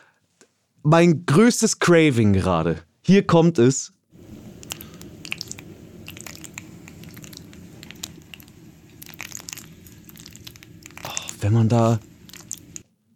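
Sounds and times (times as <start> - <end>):
speech: 0.8 - 4.0, 11.4 - 12.1
spoon stirring through thick squishy food: 4.2 - 12.8.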